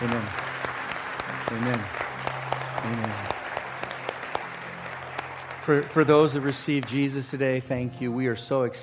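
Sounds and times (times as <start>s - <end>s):
congregation applauding with many hands clapping: 0.0s - 7.7s
speech: 1.5s - 2.0s, 2.8s - 3.3s, 5.7s - 8.8s.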